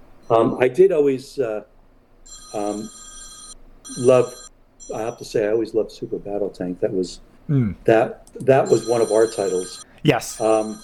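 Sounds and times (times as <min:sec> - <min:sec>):
speech: 0:00.3 - 0:01.7, 0:02.3 - 0:03.0, 0:03.9 - 0:10.8
telephone ringing with high trilling electronic rings: 0:02.3 - 0:05.2, 0:08.7 - 0:09.9.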